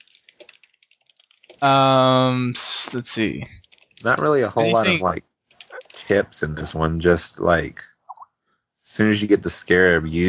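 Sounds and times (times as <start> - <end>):
computer keyboard typing: 0.0 - 1.7, 3.5 - 4.4
speech: 1.6 - 5.3, 6.1 - 7.9, 8.9 - 10.2.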